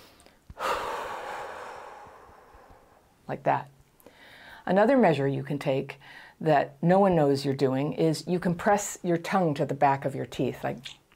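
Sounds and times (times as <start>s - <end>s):
deep breath with long exhale taken as a calming breathing exercise: 0.0s - 3.2s
speech: 3.3s - 3.8s, 4.7s - 11.0s.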